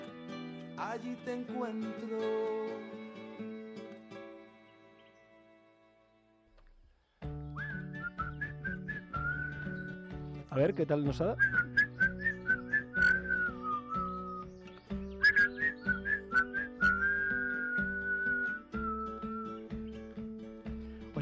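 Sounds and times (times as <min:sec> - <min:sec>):
speech: 0:00.8 - 0:03.0, 0:10.6 - 0:11.7
people whistling a tune: 0:07.3 - 0:10.1, 0:11.2 - 0:20.0.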